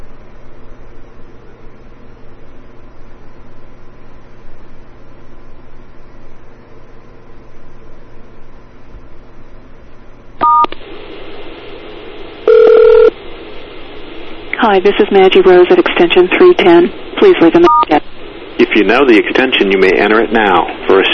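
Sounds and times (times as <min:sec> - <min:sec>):
longer, louder dial tone beep: 0:10.4 - 0:10.7, 0:12.4 - 0:13.1, 0:17.7 - 0:18.0
short keypad tone beeps: 0:10.4 - 0:10.7, 0:12.5 - 0:13.1, 0:17.6 - 0:18.0
phone line hiss during an automated extension menu call: 0:10.4 - 0:21.1
speech: 0:14.7 - 0:21.1.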